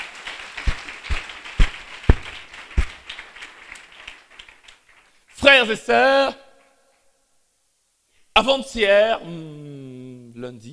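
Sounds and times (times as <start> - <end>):
church congregation clapping to acclaim the scripture reading: 0.0 - 6.1
speech: 5.6 - 6.4, 8.4 - 9.7, 10.4 - 10.7.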